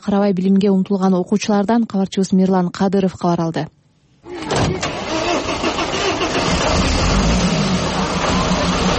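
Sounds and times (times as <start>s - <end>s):
speech: 0.0s - 3.8s
minibus engine starting and idling: 4.3s - 8.9s.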